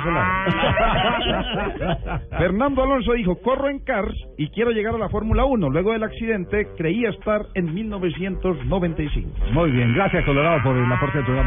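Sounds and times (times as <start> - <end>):
cow mooing in a long low call: 0.0 - 1.2, 9.5 - 11.4
laughter: 0.0 - 2.6
speech: 0.0 - 11.4.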